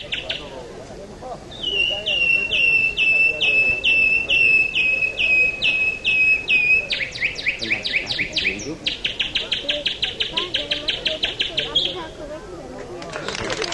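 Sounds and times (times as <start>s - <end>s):
faint murmur of noise: 0.0s - 13.7s
man on a stage whistling an imitation of nightingale song at a bird-imitation contest: 1.6s - 9.1s.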